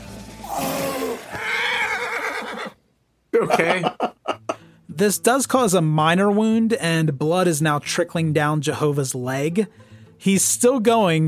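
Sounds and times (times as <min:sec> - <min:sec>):
horse whinnying: 0:00.4 - 0:02.8
speech: 0:03.4 - 0:03.9, 0:05.0 - 0:11.2
laughter: 0:03.4 - 0:04.6.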